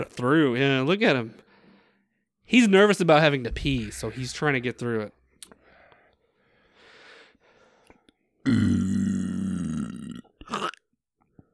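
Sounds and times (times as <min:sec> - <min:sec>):
speech: 0:00.0 - 0:01.4, 0:02.5 - 0:05.2
long loud burp ending in a cat-like squeal: 0:08.4 - 0:10.8.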